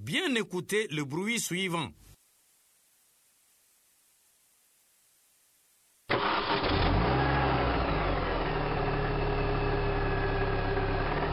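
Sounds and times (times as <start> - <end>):
speech: 0.1 - 2.1
car engine starting and idling: 6.1 - 11.3.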